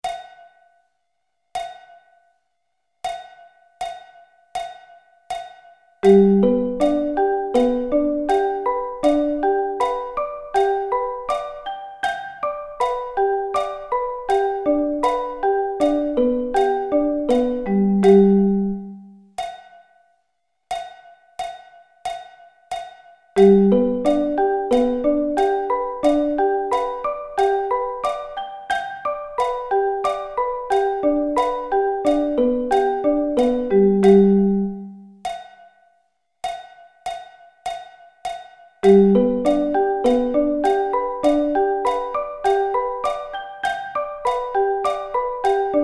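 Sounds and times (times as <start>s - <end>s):
G arpeggio inversions: 6.0s - 19.1s, 23.4s - 35.0s, 38.8s - 45.8s.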